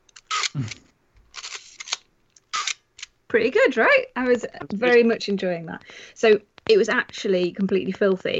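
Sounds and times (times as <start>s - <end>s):
Minolta AF film camera shutter click: 0.2s - 0.6s, 1.4s - 2.8s
speech: 0.6s - 0.8s, 3.3s - 8.3s.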